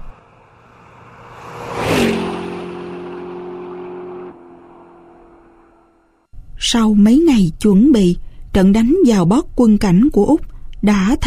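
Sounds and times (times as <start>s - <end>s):
motorbike engine roaring: 0.0s - 6.3s
speech: 6.7s - 11.2s.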